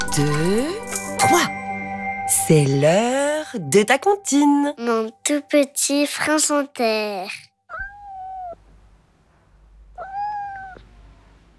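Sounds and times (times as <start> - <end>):
speech: 0.2 - 1.5, 2.5 - 7.5
drawn-out high-pitched cat meows: 7.7 - 8.6, 9.9 - 11.0.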